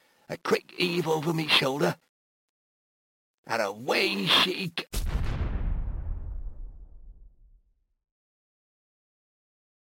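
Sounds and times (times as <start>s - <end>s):
speech: 0.3s - 2.0s, 3.4s - 5.2s
deep muffled explosion outside with a long low rumble: 5.0s - 7.6s.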